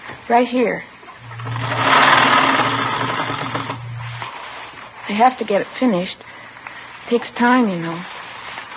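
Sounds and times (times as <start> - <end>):
speech: 0.3 - 1.7, 5.1 - 6.4, 7.1 - 8.2
sewing machine stitching rows of ruffles onto a garment: 1.4 - 4.4.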